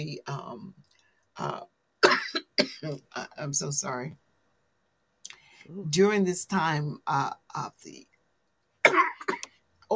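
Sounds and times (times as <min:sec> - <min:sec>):
speech: 0:00.0 - 0:04.2, 0:05.2 - 0:08.1
person coughing: 0:02.0 - 0:03.0, 0:08.8 - 0:09.6.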